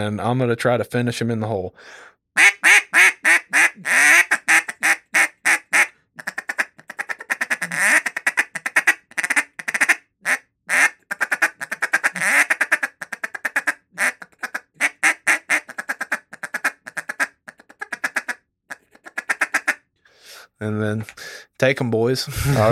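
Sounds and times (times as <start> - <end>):
speech: 0.0 - 2.8, 20.7 - 22.7
duck call blown in a rapid feed chuckle: 2.4 - 19.8.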